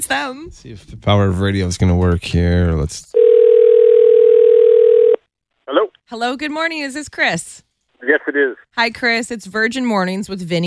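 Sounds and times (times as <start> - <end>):
speech: 0.0 - 3.3, 5.7 - 10.6
telephone dial tone: 3.2 - 5.2.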